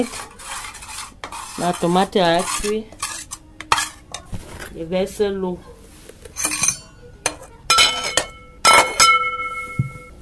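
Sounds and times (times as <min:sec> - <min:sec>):
speech: 0:00.0 - 0:00.3, 0:01.6 - 0:03.0, 0:04.8 - 0:05.8
metal lid placed on a cooking pot: 0:06.4 - 0:09.7.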